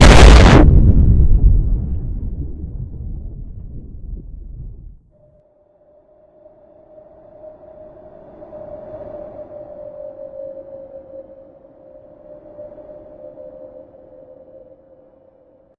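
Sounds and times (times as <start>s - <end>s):
nuclear explosion: 0.0s - 5.1s.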